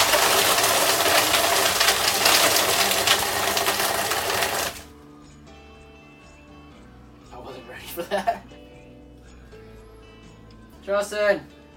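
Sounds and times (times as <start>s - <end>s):
blender blending mocha frappe: 0.0s - 4.9s
speech: 10.9s - 11.6s.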